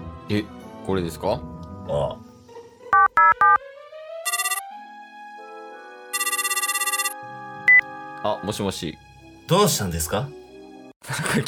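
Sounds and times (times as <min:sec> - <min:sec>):
speech: 0:00.3 - 0:02.3, 0:08.2 - 0:10.4, 0:11.1 - 0:11.4
quick phone dialing beeps: 0:03.0 - 0:03.6, 0:04.3 - 0:04.6, 0:06.2 - 0:07.8
short phone beep: 0:04.3 - 0:04.6, 0:06.2 - 0:07.1
trilling electronic phone ring bursts during an outgoing call: 0:04.3 - 0:04.6, 0:06.2 - 0:07.8.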